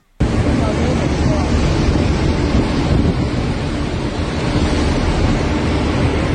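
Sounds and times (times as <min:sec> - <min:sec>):
submarine volcano eruption roar: 0:00.2 - 0:06.3.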